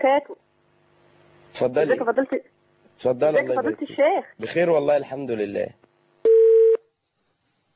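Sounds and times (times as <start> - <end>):
speech: 0.0 - 0.4, 1.6 - 5.8
telephone tone of a call line connecting: 6.3 - 6.8.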